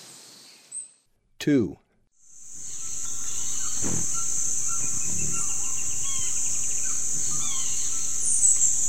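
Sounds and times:
speech: 1.4 - 1.8
Gould's jewelfront giving thin very high chips in eastern lowlands of South America: 2.2 - 8.8
Gould's jewelfront lower notes: 2.3 - 8.8.

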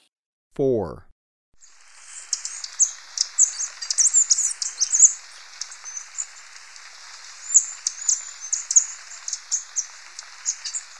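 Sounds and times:
speech: 0.6 - 1.1
Capped Conebill calling in Ecuador: 2.1 - 6.4, 7.4 - 10.9.

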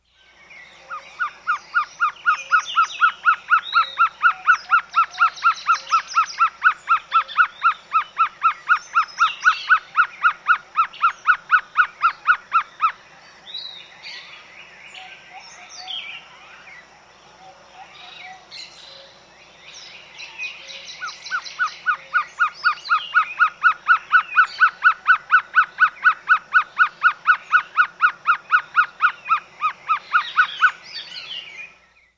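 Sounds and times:
Violaceous Trogon calling in South America: 0.8 - 13.0, 20.5 - 31.3.

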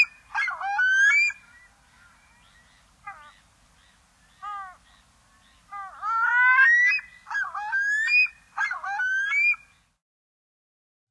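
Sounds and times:
Pacific loon calls and downward-curving yelps: 0.0 - 2.4, 5.7 - 9.6.

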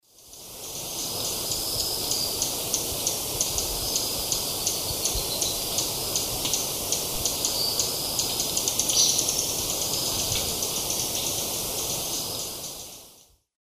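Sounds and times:
Heliodoxa schreibersii alarm calls: 1.5 - 12.8.

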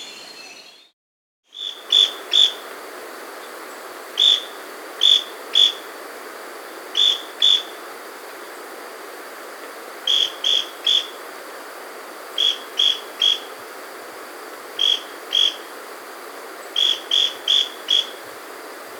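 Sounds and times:
Scale-crested pygmy-tyrant Lophotriccus pileatus calling in the Andes: 1.5 - 2.8, 3.5 - 5.9, 6.9 - 7.8, 10.1 - 11.2, 12.3 - 13.6, 14.8 - 15.7, 16.6 - 18.5.

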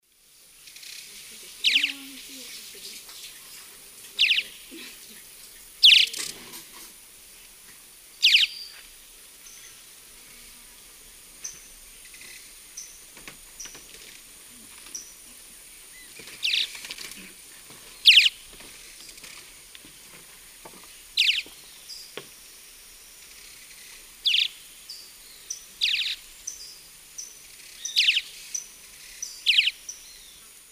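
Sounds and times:
Progne chalybea flight calls: 1.6 - 2.2, 4.2 - 4.8, 5.8 - 6.3, 8.2 - 8.6, 16.4 - 16.7, 18.0 - 18.4, 21.2 - 21.5, 24.2 - 24.6, 25.8 - 26.2, 27.8 - 28.4, 29.2 - 29.8.

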